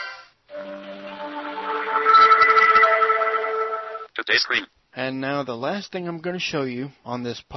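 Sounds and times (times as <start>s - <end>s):
mobile phone startup jingle while booting: 0.5s - 4.1s
speech: 4.3s - 7.5s.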